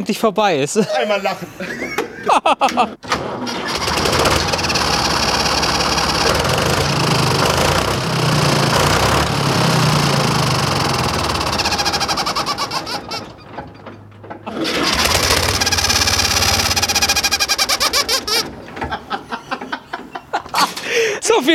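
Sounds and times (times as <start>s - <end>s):
speech: 0.0s - 3.8s
laughter: 0.8s - 3.0s, 14.5s - 15.2s, 17.7s - 21.2s
loud burst of noise: 3.1s - 13.4s, 14.5s - 18.5s
tractor engine idling at lowest engine speed then switched off: 3.5s - 20.6s.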